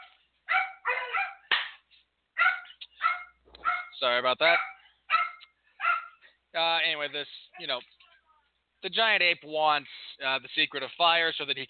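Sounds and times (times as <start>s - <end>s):
dogs barking: 0.0s - 1.5s, 2.4s - 6.4s
speech: 4.0s - 4.7s, 6.6s - 8.0s, 8.8s - 11.6s.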